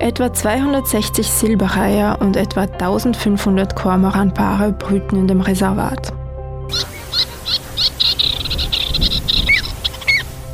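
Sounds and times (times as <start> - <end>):
speech: 0.0 - 6.9
pied avocet calling with sharp high piping notes: 6.7 - 10.5.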